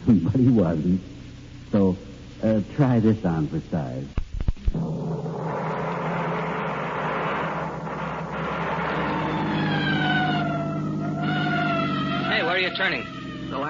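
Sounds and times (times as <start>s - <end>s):
steady rumble of a vehicle engine: 0.0s - 13.6s
speech: 0.1s - 1.1s, 1.7s - 4.2s, 12.6s - 13.6s
siren wailing: 4.8s - 13.6s.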